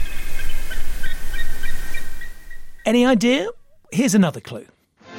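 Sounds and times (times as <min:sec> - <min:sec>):
bald eagle high thin piping chirps: 0:00.0 - 0:03.9
speech: 0:02.9 - 0:04.8.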